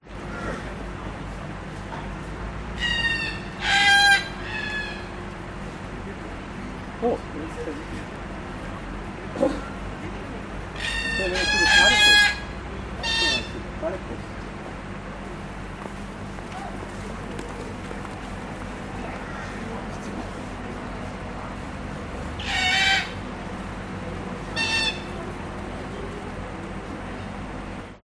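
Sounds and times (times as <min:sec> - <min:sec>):
cockatoos calling at a zoo: 0:02.7 - 0:05.8, 0:10.6 - 0:14.1, 0:16.6 - 0:27.4
people at a zoo: 0:05.9 - 0:14.4, 0:16.4 - 0:22.3, 0:24.1 - 0:27.9.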